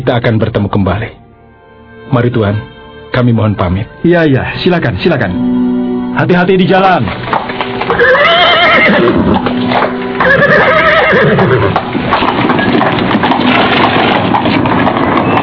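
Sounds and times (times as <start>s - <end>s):
speech: 0.0s - 1.2s, 2.1s - 7.3s, 7.9s - 12.0s
horse hooves clopping: 6.3s - 15.4s
horse-drawn wooden cart carrying a family rattling and creaking: 6.6s - 15.4s
horse neighing: 7.8s - 13.4s.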